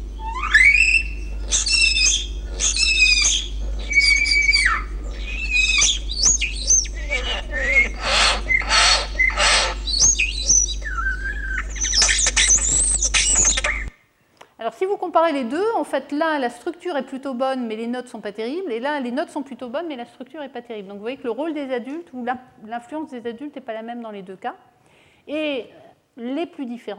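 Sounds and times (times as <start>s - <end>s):
constant low hum: 0.0s - 13.9s
song of a young bird raised in isolation: 0.0s - 13.9s
speech: 15.2s - 24.7s, 25.3s - 26.9s.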